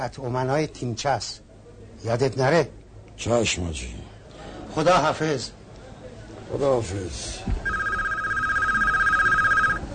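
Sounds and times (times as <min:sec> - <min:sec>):
speech: 0:00.0 - 0:01.4, 0:02.0 - 0:04.2, 0:04.8 - 0:05.6, 0:06.5 - 0:07.8
telephone bell ringing with a bright warbling trill: 0:07.6 - 0:09.9.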